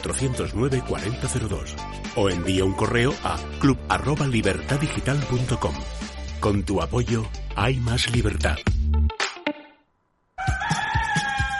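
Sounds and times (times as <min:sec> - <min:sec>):
speech: 0:00.0 - 0:08.7
rhythmic backing with low thumping beats: 0:00.0 - 0:09.6, 0:10.5 - 0:11.5
rooster crowing: 0:10.4 - 0:11.5.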